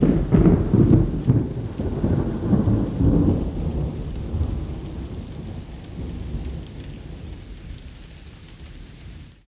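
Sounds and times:
distant thunder crack: 0.0s - 7.3s.

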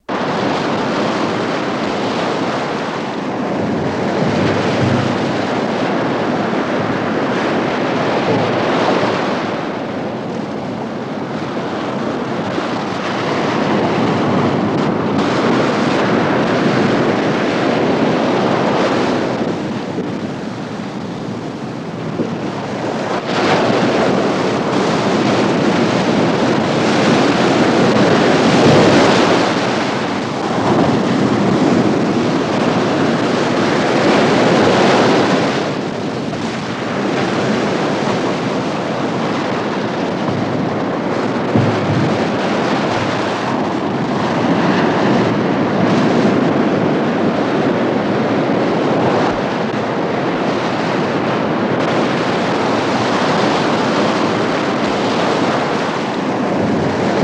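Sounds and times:
violent surf wave crashes: 0.0s - 10.1s, 10.9s - 57.2s.

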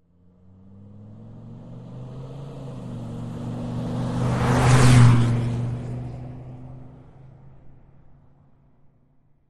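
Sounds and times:
Dodge Ram pickup truck accelerating fast, recorded on board: 0.1s - 7.6s.

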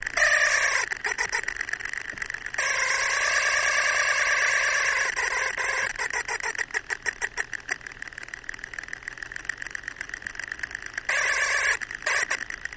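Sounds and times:
small motor screaming at variable speed: 0.0s - 12.7s.

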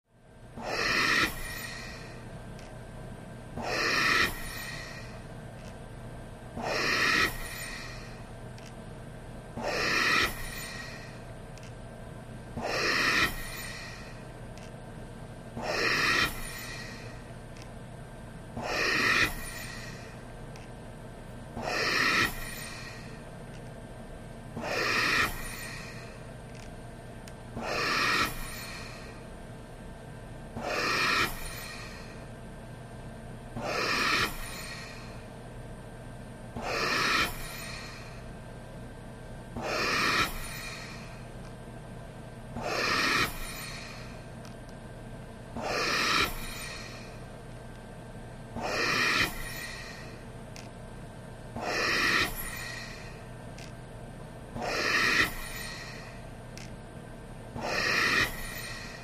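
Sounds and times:
breathing through respirator: 0.6s - 2.2s, 3.6s - 5.3s, 6.6s - 8.2s, 9.6s - 11.3s, 12.6s - 14.3s, 15.6s - 17.3s, 18.6s - 20.3s, 21.6s - 23.2s, 27.6s - 29.3s, 30.6s - 32.3s, 33.6s - 35.3s, 36.6s - 38.3s, 39.6s - 41.3s, 42.6s - 44.3s, 45.6s - 47.3s, 48.6s - 50.3s, 51.6s - 53.3s, 54.6s - 56.2s, 57.6s - 59.0s.

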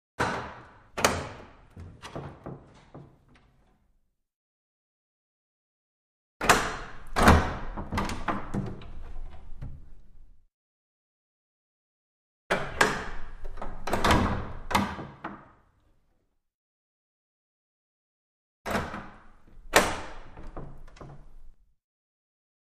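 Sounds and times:
large wooden window: 0.2s - 4.2s, 6.4s - 10.5s, 12.5s - 16.3s, 18.7s - 21.8s.

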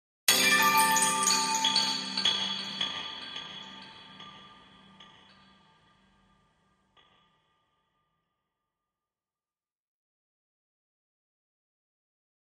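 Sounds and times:
Chinese chime bells struck with mallets: 0.3s - 5.6s.

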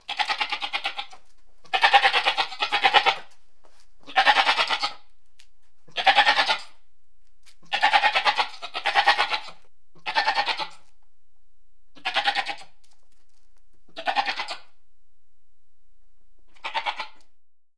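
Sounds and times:
goat bleating: 0.0s - 3.3s, 4.0s - 5.1s, 5.9s - 6.8s, 7.6s - 10.9s, 11.9s - 12.8s, 13.9s - 14.8s, 16.5s - 17.3s.

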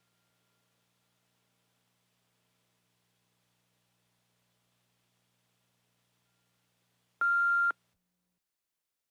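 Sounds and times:
cassette answering machine beeps: 7.2s - 7.7s.

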